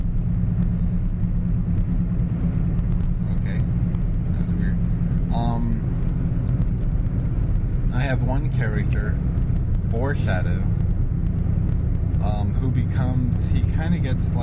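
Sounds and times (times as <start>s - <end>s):
car engine rumbling past outside: 0.0s - 14.4s
speech: 8.1s - 10.8s, 12.2s - 14.4s.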